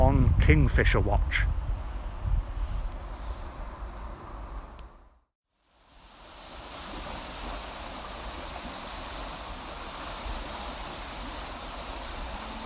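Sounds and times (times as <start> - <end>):
speech: 0.1 - 1.6
fast-flowing water of the River Aire: 5.9 - 12.6
rain falling: 6.9 - 12.6.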